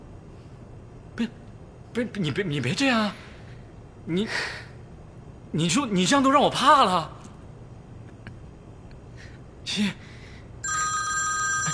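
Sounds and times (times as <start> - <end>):
speech: 1.2 - 1.4, 2.0 - 3.3, 4.0 - 4.7, 5.5 - 7.2, 9.8 - 10.0
telephone ringing with a bright electronic tone: 10.6 - 11.7.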